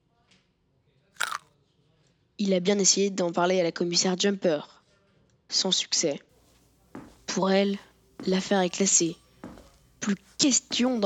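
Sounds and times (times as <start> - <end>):
someone biting into a raw potato: 1.2 - 1.4
speech: 2.4 - 4.8, 5.5 - 6.3, 7.4 - 9.2, 10.0 - 11.0.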